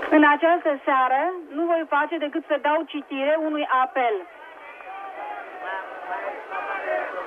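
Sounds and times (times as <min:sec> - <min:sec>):
speech: 0:00.1 - 0:04.4
crowd of tens of thousands shouting in a public square at night: 0:03.5 - 0:07.2.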